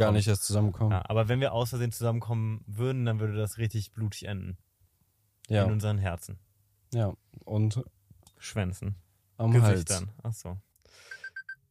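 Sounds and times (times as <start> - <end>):
speech: 0.0 - 4.7, 5.5 - 11.1
electronic alarm clock ringtone beeps: 11.1 - 11.6.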